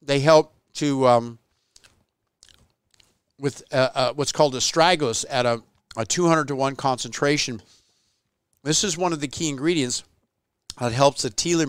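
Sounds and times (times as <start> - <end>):
speech: 0.1 - 1.4, 3.4 - 7.8, 8.6 - 10.1, 10.8 - 11.6
crunchy chewing of a hard chewable tablet: 1.7 - 3.2.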